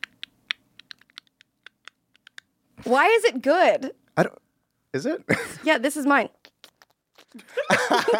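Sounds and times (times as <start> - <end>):
typing on sticky computer keyboard keys: 0.0 - 2.4
speech: 2.8 - 6.4, 7.6 - 8.1
laughter: 7.4 - 8.1.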